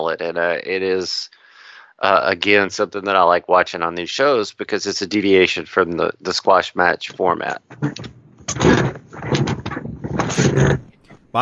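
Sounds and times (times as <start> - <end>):
speech: 0.1 - 1.4, 2.0 - 8.9
chair being readjusted by someone sitting in it: 7.5 - 11.2.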